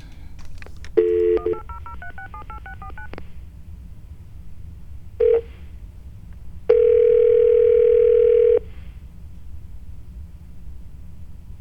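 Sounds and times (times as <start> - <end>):
telephone dial tone: 1.0 - 3.1, 6.7 - 8.7
touch-tone telephone beeps dialing a toll-free number: 1.2 - 3.1.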